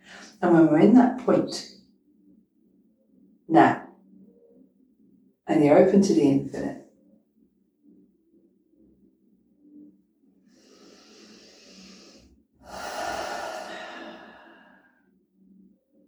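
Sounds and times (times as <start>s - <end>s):
speech: 0.4s - 1.8s, 3.5s - 3.8s, 5.5s - 6.8s
slow deep breathing during a meditation: 10.5s - 15.1s.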